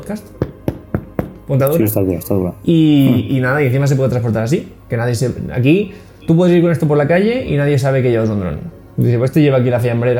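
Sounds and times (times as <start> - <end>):
speech: 0.1 - 0.4, 1.5 - 10.1
knocks on a hard zippered drone case: 0.4 - 1.5.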